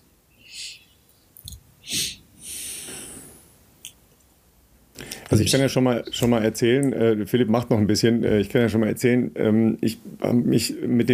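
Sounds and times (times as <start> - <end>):
breathing through the nose as a breathing exercise: 1.9 - 3.4
speech: 5.3 - 11.1.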